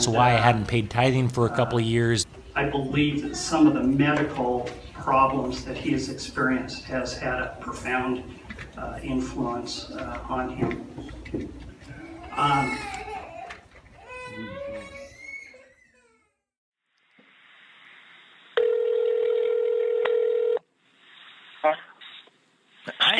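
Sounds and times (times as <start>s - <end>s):
speech: 0.0s - 11.6s, 12.4s - 13.0s
telephone dialing tone over a phone line: 18.6s - 20.6s.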